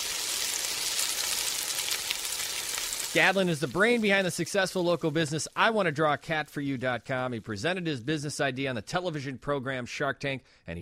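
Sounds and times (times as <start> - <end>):
food frying in a pan: 0.0 - 5.8
speech: 3.1 - 10.8.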